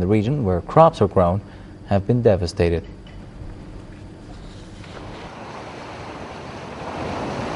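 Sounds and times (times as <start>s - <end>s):
speech: 0.0s - 3.0s
rushing floodwater of the Indus River in Sindh province Pakistan after monsoon floods: 5.2s - 7.5s.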